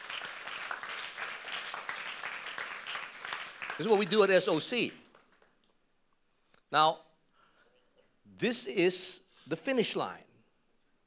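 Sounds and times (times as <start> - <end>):
audience applauding in a church: 0.0 - 5.5
speech: 3.8 - 5.0, 6.7 - 7.0, 8.4 - 10.3.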